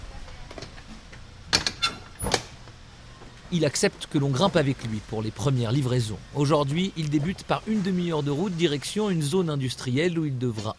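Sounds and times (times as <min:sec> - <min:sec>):
delivery truck rear doors clanking and latching: 0:01.5 - 0:02.6
speech: 0:03.5 - 0:10.7.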